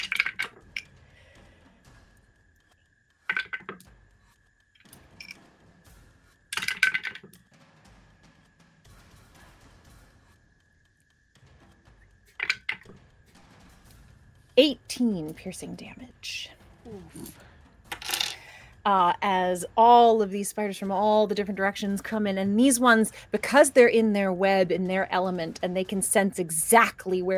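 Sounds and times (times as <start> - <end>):
dice rolling across a hard tabletop: 0.0 - 0.8, 3.3 - 3.9, 6.5 - 7.3, 12.4 - 13.0, 17.9 - 18.4
speech: 14.6 - 17.5, 18.8 - 27.3.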